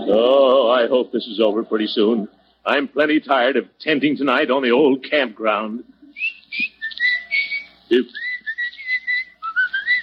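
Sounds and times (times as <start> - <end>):
speech: 0.2 - 6.7, 7.9 - 8.2
person whistling a melodic tune: 6.1 - 10.0.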